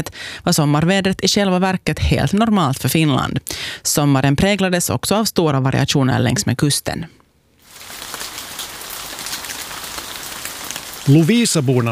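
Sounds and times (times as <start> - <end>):
speech: 0.0 - 7.2, 11.1 - 11.8
rain pattering on a hard surface: 7.6 - 11.8.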